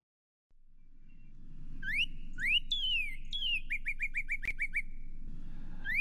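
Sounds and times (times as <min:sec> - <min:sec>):
low hum: 0:00.5 - 0:05.9
Northern Cardinal singing clear whistled phrases and chips: 0:01.0 - 0:05.1, 0:05.8 - 0:05.9.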